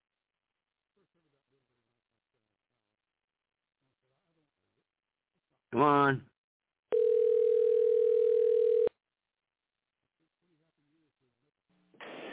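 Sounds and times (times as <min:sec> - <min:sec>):
speech: 0:05.6 - 0:06.3
telephone tone: 0:06.9 - 0:08.9
burst of hissy noise: 0:12.0 - 0:12.3.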